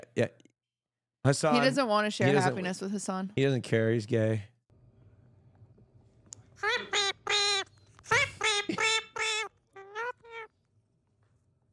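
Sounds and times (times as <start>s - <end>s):
speech: 0.2s - 0.4s, 1.2s - 4.5s
bird giving loud nasal squawking calls: 6.6s - 10.5s.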